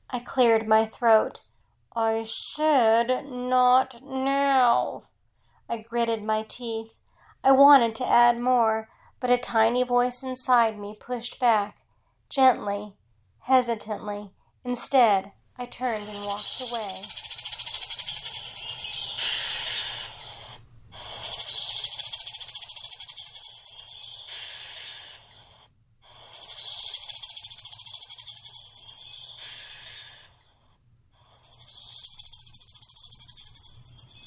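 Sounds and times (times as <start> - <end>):
speech: 0.1 - 5.1, 5.7 - 17.2
rattlesnake rattling and hissing: 15.9 - 30.4, 31.2 - 34.2.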